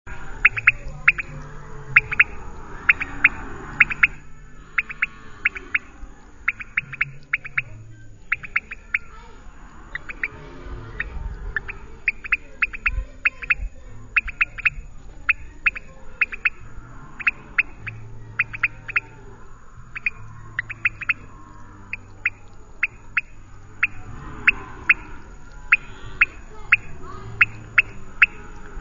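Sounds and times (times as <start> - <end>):
Leptodactylus podicipinus calling: 0.1 - 28.8.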